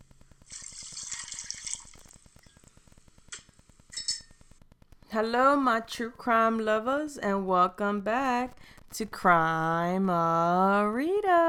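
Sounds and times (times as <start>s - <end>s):
liquid poured into a glass: 0.4s - 2.2s
light glass clink: 3.9s - 4.3s
speech: 5.1s - 11.4s.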